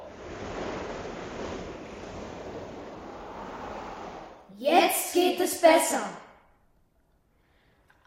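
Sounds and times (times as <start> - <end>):
waves rushing over open water: 0.0 - 4.5
wind over open water: 0.0 - 4.5
speech: 4.6 - 6.2.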